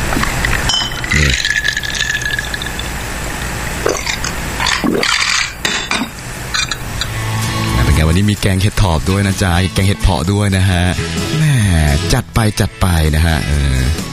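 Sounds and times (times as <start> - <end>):
brief liquid sounds of a drink being mixed: 0.1 - 5.5
utensils clinking against a glass while a drink is mixed: 0.2 - 2.9, 3.9 - 7.7
speech: 8.2 - 14.1.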